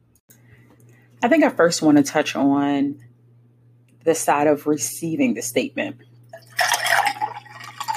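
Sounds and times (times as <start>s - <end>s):
speech: 1.2s - 3.1s, 4.0s - 6.1s
2016 French Riesling wine pouring into a glass: 6.3s - 7.9s.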